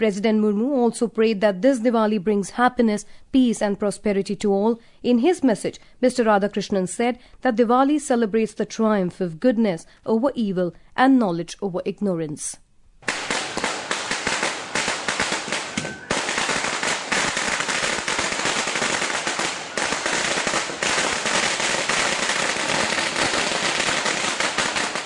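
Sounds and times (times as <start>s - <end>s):
speech: 0.0s - 13.2s
Diwali firecrackers and fireworks exploding: 13.0s - 25.0s.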